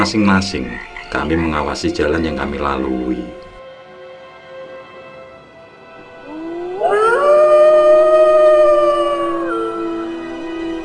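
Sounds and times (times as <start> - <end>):
speech: 0.0 - 3.4
dogs howling: 6.2 - 10.8.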